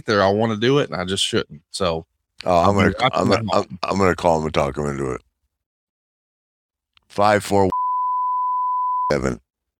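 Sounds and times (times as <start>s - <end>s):
speech: 0.0s - 5.3s, 7.1s - 7.7s, 9.1s - 9.4s
high-pitched censor bleep over spoken phone number: 7.7s - 9.2s.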